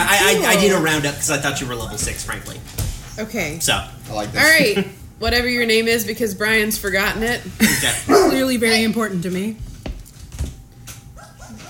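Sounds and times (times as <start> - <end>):
speech: 0.1 - 9.7
dogs barking with short sharp yelps: 8.0 - 8.8, 11.1 - 11.6
dogs whimpering and whining: 11.2 - 11.6.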